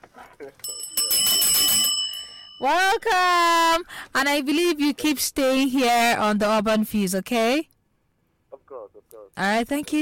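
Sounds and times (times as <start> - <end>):
speech: 0.4 - 1.4, 2.6 - 7.7, 9.1 - 9.9
bell ringing: 0.6 - 3.2.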